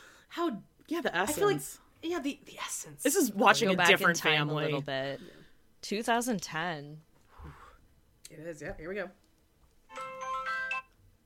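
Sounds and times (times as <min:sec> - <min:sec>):
speech: 0:00.4 - 0:07.6, 0:08.3 - 0:09.2
bright electronic mobile phone ringtone melody: 0:09.9 - 0:11.0.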